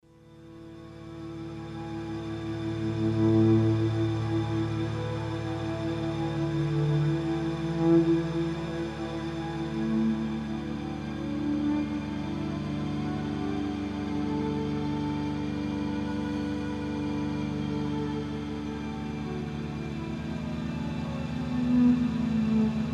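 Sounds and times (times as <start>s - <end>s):
ambient synth pad: 0.0s - 22.9s.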